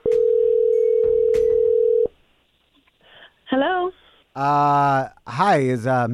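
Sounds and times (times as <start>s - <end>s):
phone ringback tone of outgoing call from restricted number: 0.0s - 2.1s
speech: 4.4s - 6.1s.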